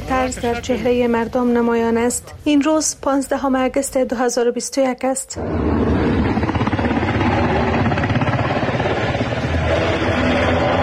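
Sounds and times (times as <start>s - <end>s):
speech: 0.2s - 6.1s
rotor chop from multiple helicopters flying overhead: 5.4s - 10.8s.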